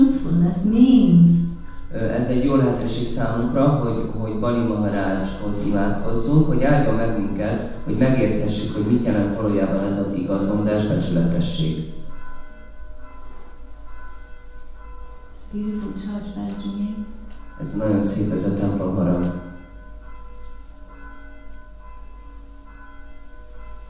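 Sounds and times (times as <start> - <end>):
church bells ringing: 0.0 - 23.8
low constant rumble: 0.0 - 23.8
speech: 0.3 - 12.0, 15.5 - 19.4.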